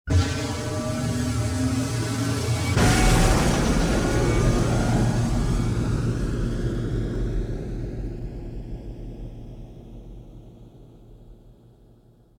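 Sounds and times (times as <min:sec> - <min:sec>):
asteroid launch of ships: 0:00.1 - 0:07.3.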